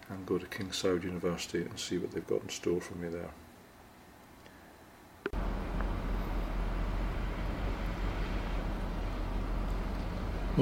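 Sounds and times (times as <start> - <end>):
speech: 0.1 - 3.5
cars and lorries whizzing past on a busy road heard from inside a car: 5.4 - 10.6.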